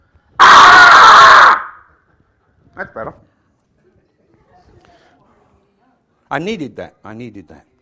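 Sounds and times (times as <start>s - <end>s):
person screaming: 0.4s - 1.8s
speech: 2.8s - 3.3s, 6.3s - 7.7s.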